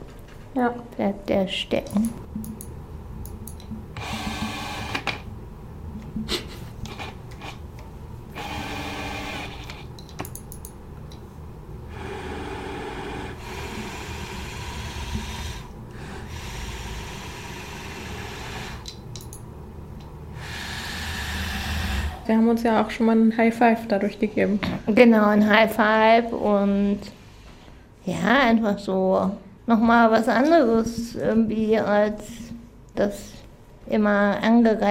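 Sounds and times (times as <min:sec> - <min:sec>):
speech: 0:00.6 - 0:02.6, 0:22.6 - 0:27.2, 0:28.0 - 0:32.4, 0:33.0 - 0:34.8
electric wheelchair motor whirring while driving: 0:04.0 - 0:05.3, 0:08.3 - 0:09.9, 0:11.9 - 0:19.0, 0:20.4 - 0:22.2.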